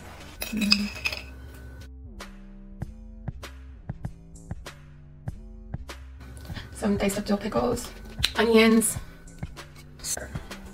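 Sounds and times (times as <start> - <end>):
utensil clinking against a container while mixing sugar with mustard and apple cider vinegar: 0.3 - 1.4
speech: 0.5 - 1.1, 6.8 - 9.1.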